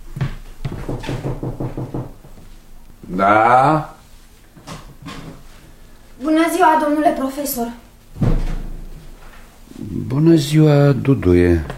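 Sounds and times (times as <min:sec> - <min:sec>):
knocking on the door of a room at the end of a corridor: 0:00.2 - 0:02.4, 0:08.2 - 0:08.8
speech: 0:03.1 - 0:03.9, 0:06.2 - 0:08.3, 0:10.1 - 0:11.7.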